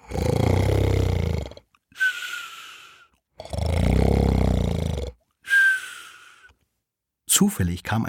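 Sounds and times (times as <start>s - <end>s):
loud exaggerated snoring imitated by a voice: 0.0s - 2.2s, 3.4s - 5.2s
shorter whistling exhale after snores: 1.9s - 3.1s, 5.4s - 6.6s
speech: 7.4s - 8.0s.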